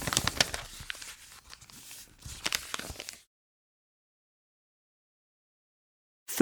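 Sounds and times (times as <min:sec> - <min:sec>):
paper being folded with crinkles and creasing rustles: 0:00.0 - 0:03.2.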